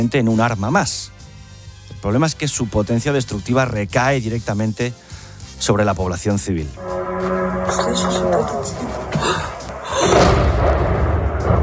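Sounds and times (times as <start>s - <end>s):
speech: 0.0s - 1.2s, 1.9s - 10.3s
Russian drone engine buzzing: 6.8s - 10.4s
loud sustained rumbling roar at a Ukrainian power plant: 6.8s - 11.6s.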